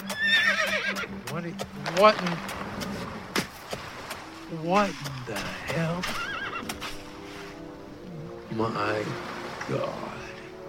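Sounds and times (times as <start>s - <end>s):
horse whinnying loudly and shrilly: 0.0s - 1.1s, 6.0s - 6.8s
speech: 1.4s - 2.6s, 4.5s - 6.3s, 8.6s - 10.2s.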